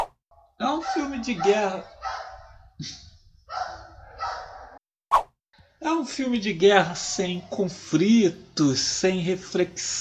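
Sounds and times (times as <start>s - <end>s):
pack of dogs barking: 0.6s - 2.7s, 3.5s - 4.8s
speech: 0.8s - 2.0s, 2.8s - 3.6s, 5.8s - 9.9s.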